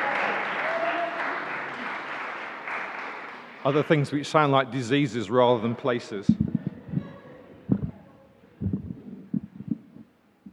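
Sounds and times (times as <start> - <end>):
audience applause at a church licensing service: 0.0 - 4.0
speech: 3.6 - 6.4.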